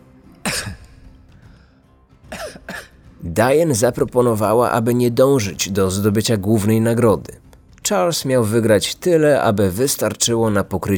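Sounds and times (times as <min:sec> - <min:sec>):
person coughing harshly: 0:00.4 - 0:01.0, 0:02.3 - 0:03.0
speech: 0:03.2 - 0:10.9.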